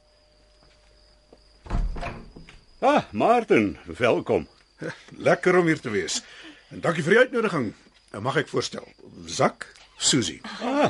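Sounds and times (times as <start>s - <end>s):
door low dull thunk: 1.6s - 2.6s
speech: 2.8s - 10.8s.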